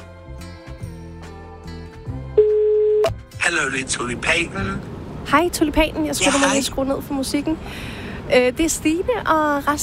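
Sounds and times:
phone call ringing tone while waiting for an answer: 0:02.4 - 0:03.1
speech: 0:03.4 - 0:09.8.

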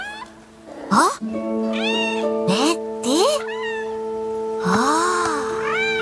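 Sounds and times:
cat meowing: 0:00.0 - 0:01.1, 0:01.7 - 0:04.0, 0:04.6 - 0:06.0
speech: 0:01.0 - 0:01.6.

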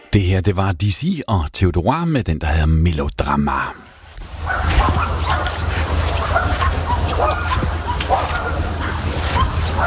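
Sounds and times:
speech: 0:00.1 - 0:03.9
many dogs barking, yipping and whimpering at a large dog activity centre beside a lake: 0:04.3 - 0:09.8.

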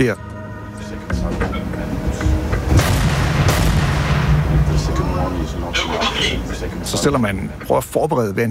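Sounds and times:
speech: 0:00.0 - 0:01.7, 0:05.2 - 0:08.4
warship gun firing a large shell during a firing exercise off North Zealand: 0:02.7 - 0:04.7.

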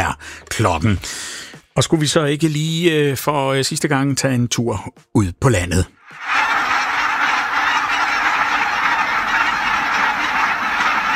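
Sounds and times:
speech: 0:00.6 - 0:01.2, 0:01.8 - 0:06.4
barnacle geese flock flapping and honking over fields: 0:06.1 - 0:11.1.

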